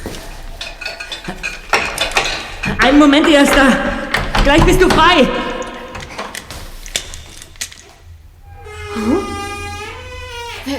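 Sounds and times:
sharper scraping clanks: 0:00.0 - 0:10.7
metallic clinking and rattling: 0:00.1 - 0:08.2
speech: 0:01.3 - 0:01.5, 0:02.8 - 0:05.5.

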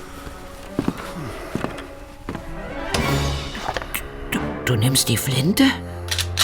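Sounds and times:
footsteps: 0:00.0 - 0:04.0
speech: 0:04.7 - 0:06.0.

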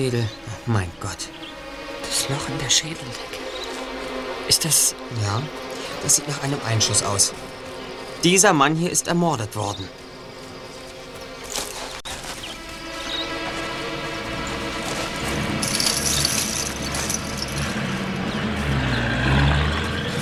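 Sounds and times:
speech: 0:00.0 - 0:01.4, 0:02.1 - 0:03.4, 0:04.5 - 0:07.5, 0:08.2 - 0:10.0
truck engine rumbling: 0:12.9 - 0:20.2
rattling: 0:14.8 - 0:18.9.

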